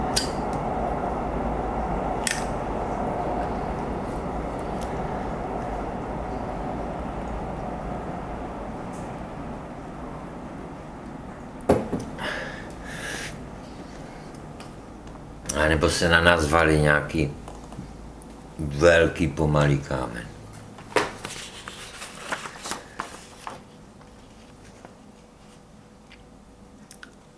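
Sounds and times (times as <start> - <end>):
slow freight train rumbling past: 0.0 - 20.5
speech: 15.8 - 17.4, 18.8 - 20.3.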